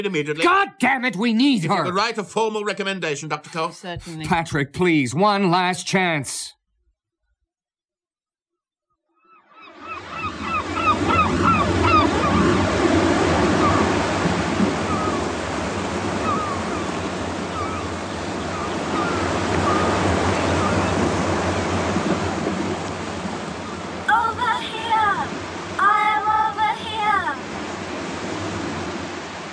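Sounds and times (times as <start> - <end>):
speech: 0.0 - 6.6
ocean waves washing on shore: 9.7 - 29.5
faint high cries: 18.6 - 20.8.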